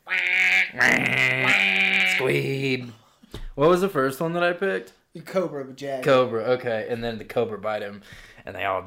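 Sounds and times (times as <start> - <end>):
duck quacking: 0.0 - 2.4
speech: 0.7 - 3.0, 3.6 - 8.8.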